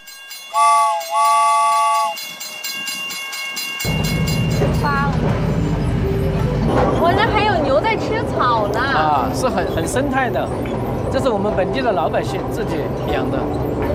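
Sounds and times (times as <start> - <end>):
train horn blasts: 0.5 - 2.2
small sightseeing train departing: 1.8 - 13.9
speech: 9.0 - 13.9.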